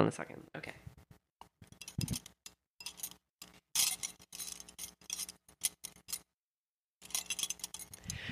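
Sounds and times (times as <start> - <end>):
speech: 0.0 - 0.9
metal jewelry clinking and jangling: 1.6 - 6.3, 7.0 - 8.3.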